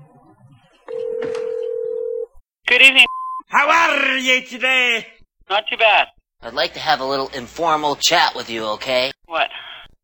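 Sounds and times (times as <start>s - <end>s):
steady mid-pitched telephone line tone during a prank phone call: 0.9s - 2.4s
speech: 2.8s - 9.6s.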